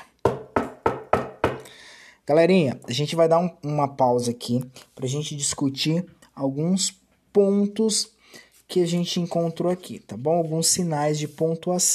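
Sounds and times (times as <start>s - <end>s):
firm knocking on a door: 0.2s - 1.6s
speech: 2.3s - 11.9s.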